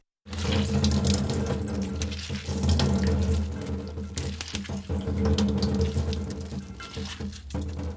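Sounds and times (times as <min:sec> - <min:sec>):
water streaming from boiled spinach squeezed by hand over a strainer: 0:00.3 - 0:07.9.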